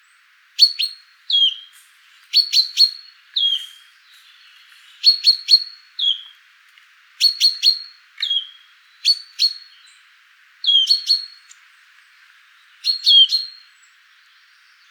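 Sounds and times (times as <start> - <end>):
wood warbler call: 0.0 - 6.5, 7.2 - 14.8
Fringilla coelebs chaffinch calls in a vocal duel: 0.6 - 6.3, 7.2 - 10.0, 10.6 - 11.6, 12.6 - 13.6.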